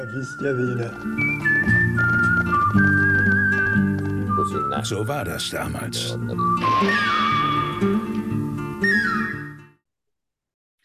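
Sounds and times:
speech: 0:00.0 - 0:03.0, 0:04.5 - 0:08.3
person whistling a clear sustained melody: 0:00.0 - 0:05.0, 0:08.8 - 0:09.6
steady orchestral accompaniment: 0:00.0 - 0:09.6.

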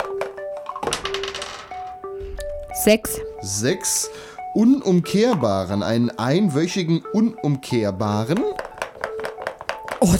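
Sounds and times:
die rolled during a board game: 0:00.0 - 0:02.1, 0:08.4 - 0:10.1
speech: 0:02.8 - 0:08.7, 0:10.0 - 0:10.1.

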